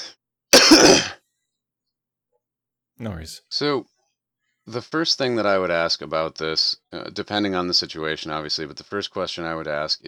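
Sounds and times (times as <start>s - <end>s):
throat clearing: 0.6s - 1.2s
speech: 3.0s - 3.9s, 4.7s - 10.0s.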